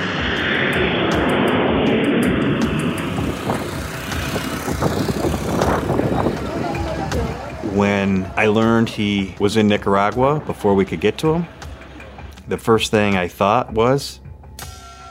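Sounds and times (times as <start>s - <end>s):
airplane engine roar flying overhead: 0.0s - 15.0s
indistinct talk: 6.1s - 13.6s
speech: 8.1s - 11.6s, 12.5s - 14.2s.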